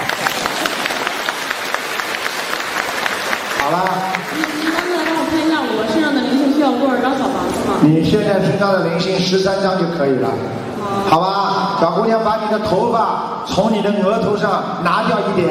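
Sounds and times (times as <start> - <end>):
audience applause: 0.0 - 6.5
speech: 3.7 - 4.1, 6.8 - 15.4.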